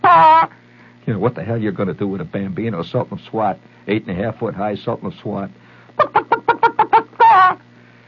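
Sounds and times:
person's voice imitating a hen clucking and squawking: 0.0 - 0.6, 6.0 - 7.6
speech: 0.2 - 6.6.

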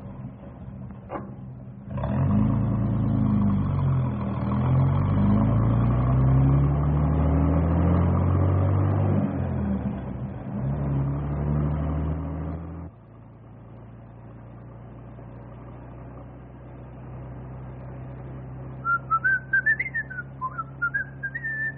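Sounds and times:
steady low engine rumble: 0.0 - 21.7
man whistling a short wandering tune: 18.8 - 21.7.

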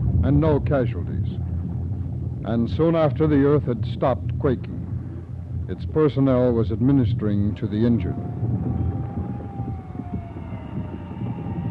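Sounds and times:
heavy low rumble of traffic or engines: 0.0 - 11.6
speech: 0.2 - 1.5, 2.4 - 4.8, 5.7 - 8.8
emergency siren wailing with a slowly falling tone: 8.0 - 11.6.

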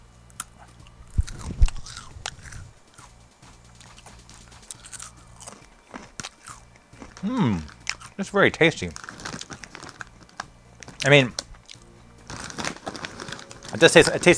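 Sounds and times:
chewing a blueberry cracker: 0.3 - 8.2, 8.8 - 14.3
stale triangular blueberry cracker crunching: 0.3 - 14.3
speech: 7.2 - 9.0, 11.0 - 11.4, 13.8 - 14.3.

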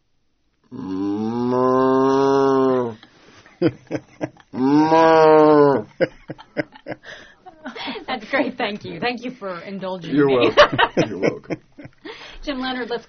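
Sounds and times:
person imitating a cow mooing: 0.7 - 3.0, 4.6 - 5.9
short breathy vocal bursts: 0.7 - 3.2, 4.6 - 5.9
laughter: 3.5 - 4.7, 5.7 - 9.1, 10.1 - 12.0
speech: 3.6 - 5.0, 8.3 - 11.6, 12.5 - 13.0.

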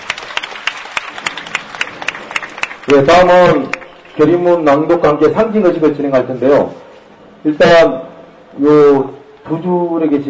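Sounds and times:
applause for a hunger-strike delegation at a gathering: 0.0 - 4.3
speech: 2.9 - 6.8, 7.4 - 10.2.

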